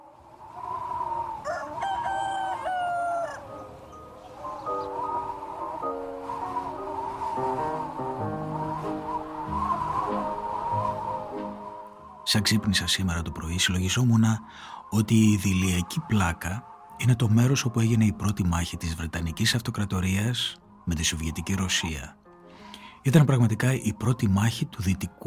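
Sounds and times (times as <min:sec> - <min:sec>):
rooster crowing: 0:00.6 - 0:12.2
speech: 0:12.3 - 0:22.2, 0:23.0 - 0:25.2.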